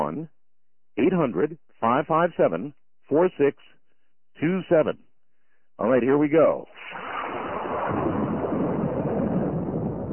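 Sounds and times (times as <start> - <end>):
speech: 0.1 - 0.4, 1.0 - 3.8, 4.4 - 5.1, 5.8 - 7.1
thunder rumbling: 6.8 - 10.1.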